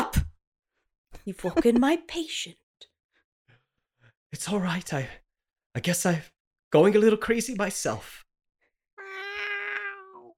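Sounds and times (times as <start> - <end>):
speech: 1.3 - 2.6, 4.3 - 5.2, 5.8 - 8.2
person imitating a cat meowing: 9.0 - 10.3.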